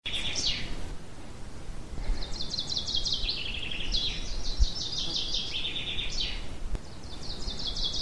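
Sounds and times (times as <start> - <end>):
birds singing trilled bursts in a pine forest at Ardenno: 0.1 - 0.7, 2.2 - 7.9.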